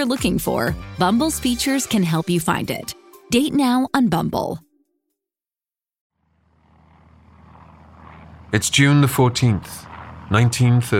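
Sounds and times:
speech: 0:00.0 - 0:04.6, 0:08.5 - 0:10.9
large silver propeller transport plane descending over the Adriatic toward Venice: 0:06.2 - 0:10.9.

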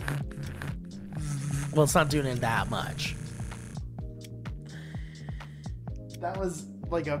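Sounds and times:
electric toothbrush buzzing in use: 0:00.0 - 0:04.0
speech: 0:01.8 - 0:03.2, 0:06.2 - 0:07.1.

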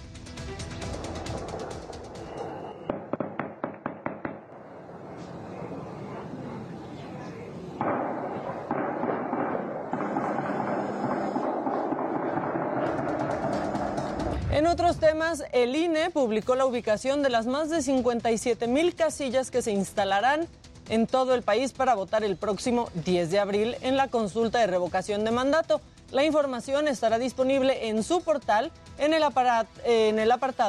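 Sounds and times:
gunshots fired by armed men at a cockfighting arena in Las Tinajas Mexico: 0:01.0 - 0:04.9, 0:07.8 - 0:15.3
rumbling and crackling: 0:07.8 - 0:15.5
speech: 0:14.6 - 0:30.6.

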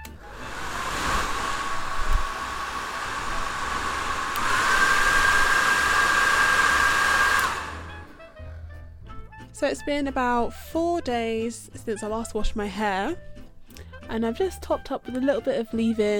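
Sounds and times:
hairdryer with hood attachment drying hair: 0:00.0 - 0:08.4
speech: 0:09.6 - 0:13.3, 0:14.1 - 0:16.1.

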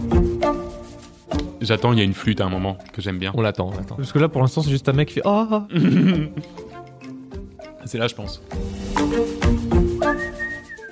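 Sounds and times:
music track with thumping low beats: 0:00.0 - 0:10.9
speech: 0:01.6 - 0:06.7, 0:07.9 - 0:09.5
laughter: 0:05.7 - 0:06.5
whistled melody: 0:09.0 - 0:10.9.

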